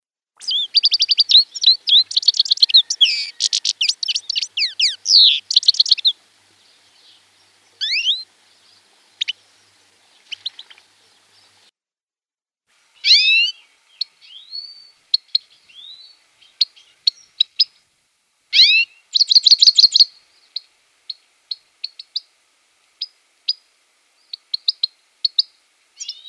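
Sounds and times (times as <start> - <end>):
grey-headed goldfinch calling: 0.4 - 11.7, 13.0 - 17.6, 18.5 - 22.3.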